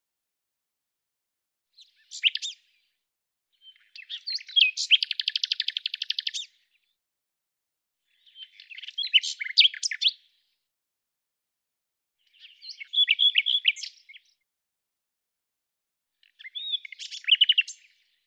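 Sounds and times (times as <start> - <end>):
bird song: 1.7 - 7.0, 8.0 - 10.7, 12.2 - 14.5, 16.1 - 18.2.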